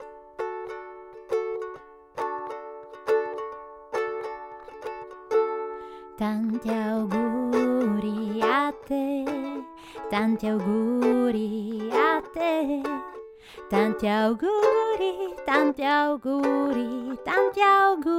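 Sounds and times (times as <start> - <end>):
ukulele: 0.0 - 18.1
woman singing in Italian: 6.1 - 18.1.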